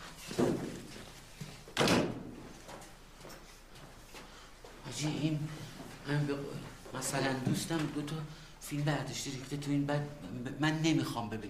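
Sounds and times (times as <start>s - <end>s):
door shutting with a thud and brief rattle: 1.8s - 2.3s
speech: 5.0s - 11.4s.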